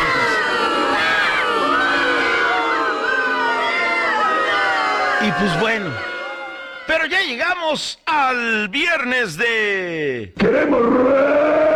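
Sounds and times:
large crowd booing and jeering: 0.0 - 7.5, 10.4 - 11.7
speech: 5.2 - 6.1, 6.9 - 11.7.

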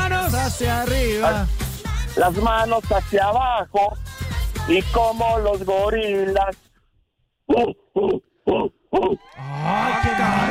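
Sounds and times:
speech: 0.5 - 1.6, 2.2 - 4.0, 4.7 - 6.7, 7.5 - 10.5
human voice imitating a dog growling: 7.5 - 9.9.

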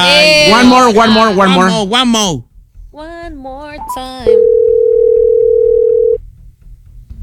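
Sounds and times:
voice speaking on a telephone line: 0.0 - 2.4
ringback tone of an outgoing telephone call: 4.4 - 6.2.

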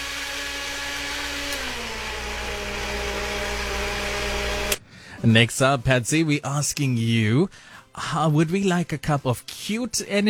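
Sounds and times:
kitchen blender blending South Indian romborasi chili: 0.0 - 4.8
speech: 5.2 - 10.2.

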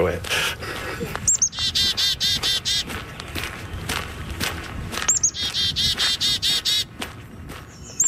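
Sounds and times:
speech: 0.0 - 1.2
footsteps crunching: 0.0 - 8.0
bird chirping outdoors in Edmonton: 1.2 - 6.9, 7.5 - 8.0.

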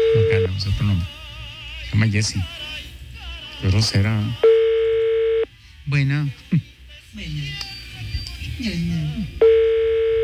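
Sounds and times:
telephone line tone while another number is dialed: 0.0 - 0.6, 4.4 - 5.5, 9.4 - 10.2
speech: 0.6 - 1.2, 1.9 - 2.6, 3.6 - 4.5, 5.9 - 7.7, 8.6 - 9.6.

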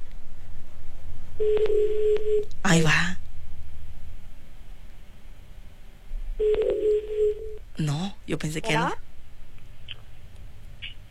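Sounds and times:
low rhythmic hum: 0.0 - 11.0
speech: 2.7 - 3.1, 8.4 - 9.0
telephone tones as a number is dialed to place a call: 6.4 - 7.4.

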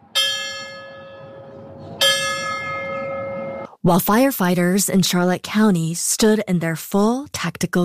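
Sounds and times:
church bells ringing at a memorial stair climb in Charlotte County: 0.0 - 3.7
speech: 3.8 - 7.8.

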